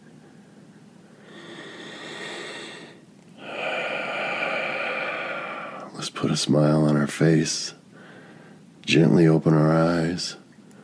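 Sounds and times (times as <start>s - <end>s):
deep breathing in and out during a guided relaxation: 1.1s - 6.1s, 7.9s - 8.6s
speech: 6.1s - 7.8s, 8.9s - 10.4s.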